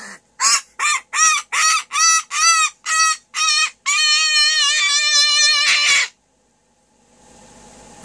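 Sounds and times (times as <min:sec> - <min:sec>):
bird screaming: 0:00.4 - 0:06.2.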